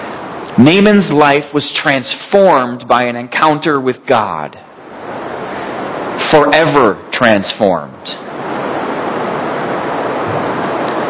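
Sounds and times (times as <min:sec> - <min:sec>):
heavy rain: 0:00.0 - 0:00.8, 0:04.8 - 0:06.9, 0:08.1 - 0:11.0
speech: 0:00.6 - 0:04.6, 0:06.3 - 0:08.3.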